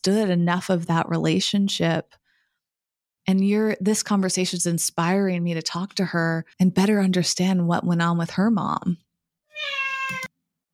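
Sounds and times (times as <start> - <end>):
speech: 0.0 - 2.2, 3.3 - 9.0
cat meowing: 9.5 - 10.3.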